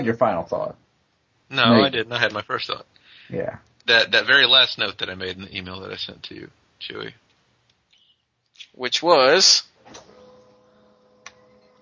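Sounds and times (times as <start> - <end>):
speech: 0.0 - 0.8, 1.5 - 7.2, 8.6 - 10.1
printer running with steady mechanical hum: 9.8 - 11.7.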